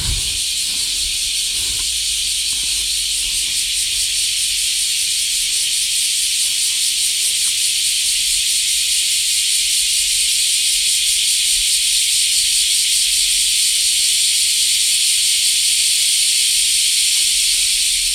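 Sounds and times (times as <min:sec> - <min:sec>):
chorus of cicadas buzzing in summer under a large tree in Japan: 0:00.0 - 0:18.1.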